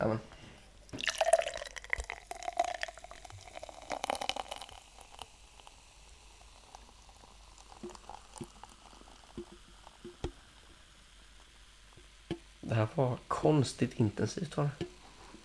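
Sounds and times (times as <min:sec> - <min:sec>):
speech: 0:00.0 - 0:00.3, 0:12.8 - 0:14.9
beer being poured into a glass: 0:00.8 - 0:10.8
small clicks and drips: 0:00.8 - 0:12.5
beer fizzing crackle: 0:00.8 - 0:15.4.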